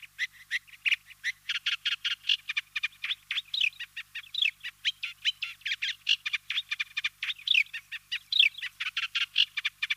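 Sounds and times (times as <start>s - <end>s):
Eurasian reed warbler Acrocephalus scirpaceus singing a grating chatter: 0.0s - 9.9s.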